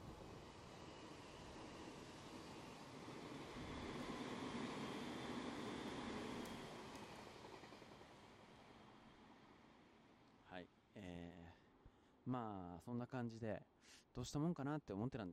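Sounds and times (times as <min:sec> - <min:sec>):
train rumbling past with rattling clatter: 0:00.0 - 0:10.1
speech: 0:10.6 - 0:11.6, 0:12.2 - 0:15.3.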